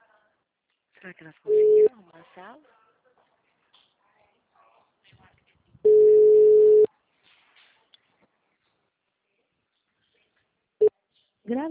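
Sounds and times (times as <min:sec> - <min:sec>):
faint small noises: 0:00.0 - 0:11.7
speech: 0:01.0 - 0:02.8, 0:11.5 - 0:11.7
telephone ringback tone on an unanswered call: 0:01.5 - 0:01.9, 0:05.9 - 0:06.9.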